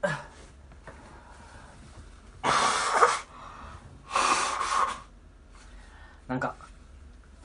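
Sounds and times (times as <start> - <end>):
quiet breathing: 0.0 - 2.2, 3.3 - 6.3
person blowing their nose irritated by barbecue charcoal smoke: 2.4 - 3.3, 4.1 - 5.1.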